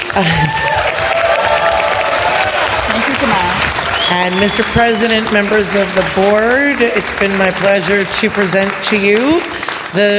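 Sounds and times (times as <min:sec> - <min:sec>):
audience applause at a scholarship presentation for blind students: 0:00.0 - 0:10.1
speech: 0:00.2 - 0:00.7, 0:04.1 - 0:10.1.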